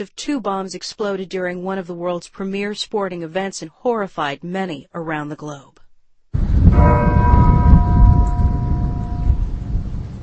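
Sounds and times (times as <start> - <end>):
speech: 0.0 - 5.7
dense rumbling outdoor wash of low noise: 6.4 - 10.2
church bell in Massachusetts tolling in remembrance of the marathon bombing: 6.7 - 9.8.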